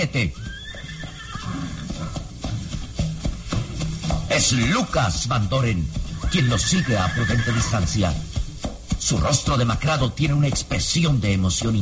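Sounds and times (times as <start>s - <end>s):
speech: 0.0s - 0.5s, 4.4s - 8.3s, 9.0s - 11.7s
horse hooves clopping on dry earth: 0.0s - 11.7s
horse whinnying: 0.3s - 2.4s, 6.1s - 8.2s.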